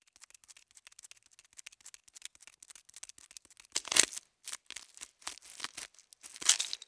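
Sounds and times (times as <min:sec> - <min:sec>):
spider feet scurrying: 0:03.8 - 0:06.8.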